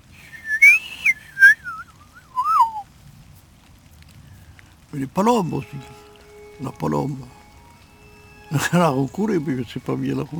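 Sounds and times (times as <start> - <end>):
person whistling an imitation of a woodpecker spring call: 0.2 - 2.8
speech: 4.9 - 6.0, 6.6 - 7.4, 8.5 - 10.3.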